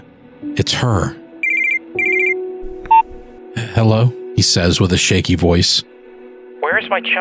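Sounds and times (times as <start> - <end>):
speech: 0.4 - 1.2, 3.8 - 5.9, 6.8 - 7.1
steady electronic tone: 1.4 - 2.4
short beep: 1.4 - 3.0
telephone ringing in warbling bursts: 1.4 - 3.0.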